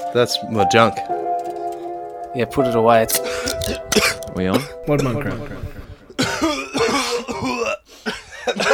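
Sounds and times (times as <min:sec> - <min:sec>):
speech: 0:00.1 - 0:01.2, 0:02.3 - 0:06.6
person hacking coughs: 0:06.2 - 0:08.7.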